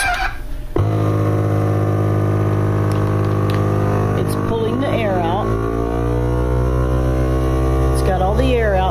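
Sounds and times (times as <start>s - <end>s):
vacuum sealer pump pumping air from bag: 0.7s - 8.8s.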